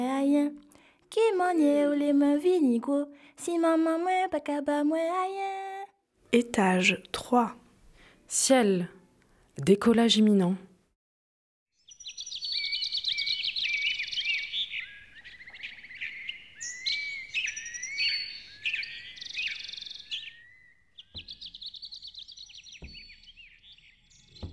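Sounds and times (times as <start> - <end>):
speech: 0.0 - 5.7, 6.3 - 7.6, 8.3 - 9.0, 9.6 - 10.7
birds chirping and twittering: 6.4 - 8.9, 11.9 - 24.5.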